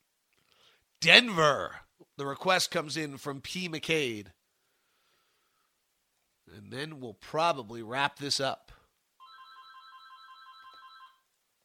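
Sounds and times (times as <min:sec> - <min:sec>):
speech: 0:01.0 - 0:04.4, 0:06.5 - 0:08.7
home telephone ringing with electronic trill: 0:09.2 - 0:11.2.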